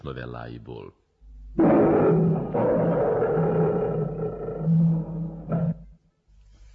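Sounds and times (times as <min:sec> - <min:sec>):
speech: 0:00.0 - 0:03.1
lion roaring: 0:01.4 - 0:06.0.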